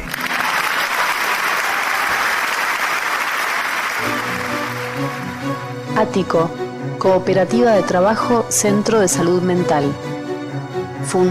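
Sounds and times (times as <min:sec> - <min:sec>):
studio audience applause: 0:00.0 - 0:05.9
speech: 0:06.0 - 0:10.2, 0:11.1 - 0:11.2.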